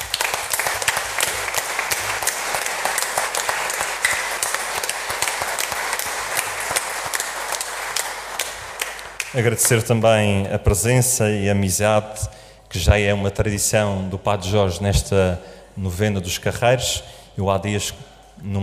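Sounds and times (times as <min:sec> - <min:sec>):
audience applauding in a church: 0:00.0 - 0:09.9
speech: 0:09.4 - 0:18.6.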